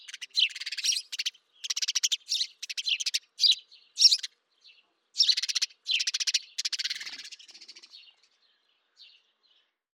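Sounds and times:
house sparrow Passer domesticus harsh chirps and chatters: 0.0 - 4.3, 5.2 - 8.2.

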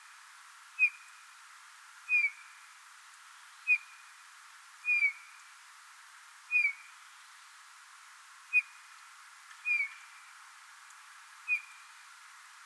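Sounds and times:
faint steady background hiss: 0.0 - 12.6
Eurasian bullfinch Pyrrhula pyrrhula piping whistles: 2.1 - 2.4, 4.8 - 5.3, 6.5 - 6.9, 9.6 - 10.0, 11.5 - 11.9.

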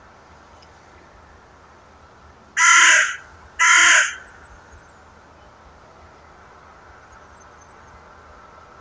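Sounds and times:
Corvus corone carrion crow giving harsh raspy caws: 2.6 - 4.4.

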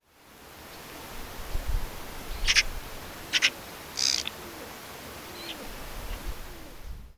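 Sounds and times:
background hiss: 0.0 - 7.1
Eurasian magpie Pica pica call: 2.4 - 4.6.

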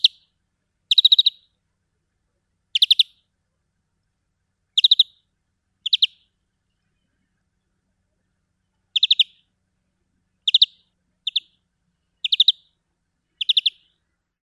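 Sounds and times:
Chloris chloris European greenfinch calling: 0.0 - 1.6, 2.7 - 3.3, 4.7 - 7.2, 8.9 - 9.5, 10.4 - 14.0.

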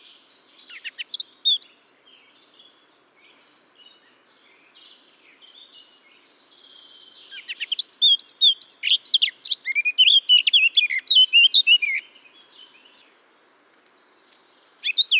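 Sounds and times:
Eurasian blackcap Sylvia atricapilla singing: 0.7 - 1.8, 6.7 - 12.1, 14.8 - 15.1.

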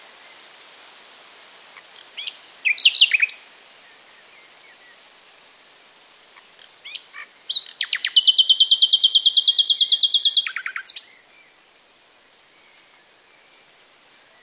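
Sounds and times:
common nightingale song with sharp notes and long trill: 2.2 - 3.4, 6.8 - 11.5.

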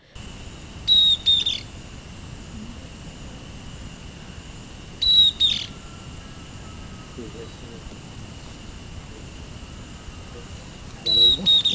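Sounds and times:
quiet low hiss: 0.0 - 11.7
bird call with high thin whistled phrase and short buzzy note: 0.8 - 1.7, 5.0 - 7.7, 11.0 - 11.7.

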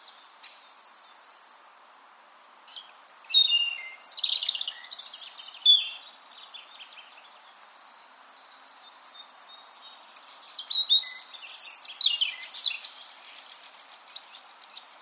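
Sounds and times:
European robin Erithacus rubecula singing: 0.0 - 15.0
faint background hiss: 0.0 - 15.0.

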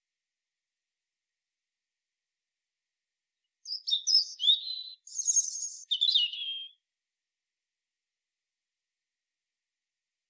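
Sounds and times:
European robin singing Erithacus rubecula: 3.6 - 6.8.

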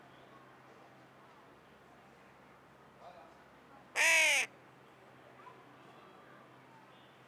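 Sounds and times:
Carrion crow grating caw: 4.0 - 4.5.

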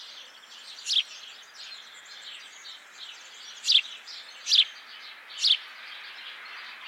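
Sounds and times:
house sparrow chirps: 0.0 - 4.8, 5.4 - 5.6.

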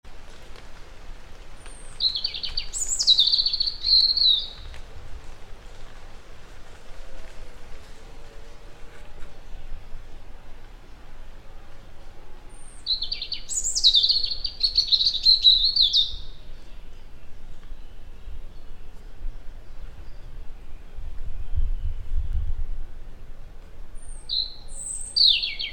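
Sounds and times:
background hiss: 0.1 - 25.7
European robin Erithacus rubecula singing high thin warbling phrases: 1.7 - 4.7, 12.5 - 22.5, 24.0 - 25.7.

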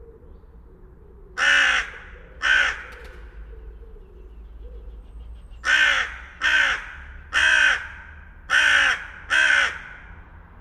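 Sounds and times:
Carrion crow Corvus corone cawing harshly: 1.4 - 2.9, 5.6 - 10.2.

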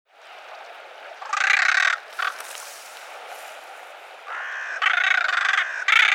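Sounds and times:
carrion crow cawing: 1.2 - 2.6, 4.3 - 6.1.

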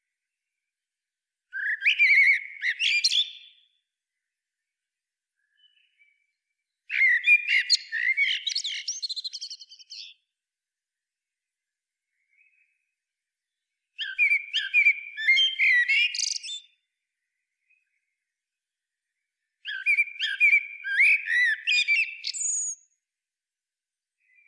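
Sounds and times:
Turdus merula common blackbird singing warbling phrases: 1.5 - 3.7, 5.4 - 6.2, 6.9 - 10.2, 14.0 - 16.8, 19.6 - 22.8.

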